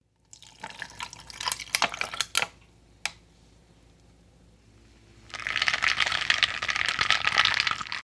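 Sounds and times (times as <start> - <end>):
milk pouring: 0.2 - 2.3, 5.2 - 8.0.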